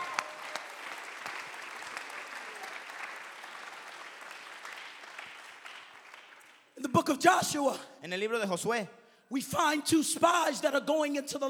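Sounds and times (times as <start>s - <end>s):
large audience clapping during a sermon: 0.0s - 6.8s
speech: 6.8s - 11.4s.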